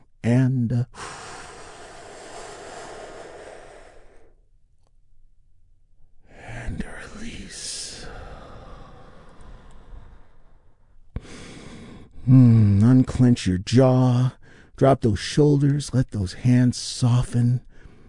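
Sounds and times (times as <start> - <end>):
deep breath in and out: 0.9 - 4.5, 7.8 - 12.8, 14.4 - 14.8, 17.6 - 18.0
speech: 12.3 - 17.7.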